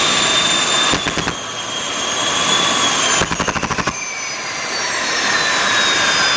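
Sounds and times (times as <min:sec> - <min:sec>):
jet engine roaring: 0:00.0 - 0:06.3
jet engine compressor stall popping pulses: 0:03.2 - 0:04.0.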